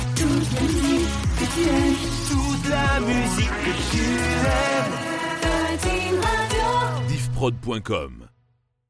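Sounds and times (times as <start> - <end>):
sung radio jingle: 0.2 - 8.4.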